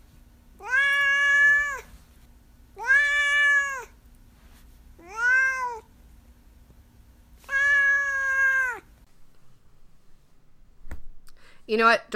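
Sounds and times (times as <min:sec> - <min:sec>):
faint low hum: 0:00.0 - 0:12.1
cat meowing: 0:00.6 - 0:01.9, 0:02.8 - 0:04.0, 0:05.0 - 0:05.9, 0:07.4 - 0:08.9
speech: 0:11.7 - 0:12.1.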